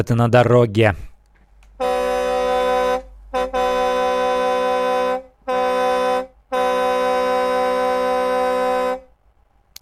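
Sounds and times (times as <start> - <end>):
speech: 0.0 - 1.1
loud car horn honking as a radio broadcast demonstration: 1.7 - 9.1.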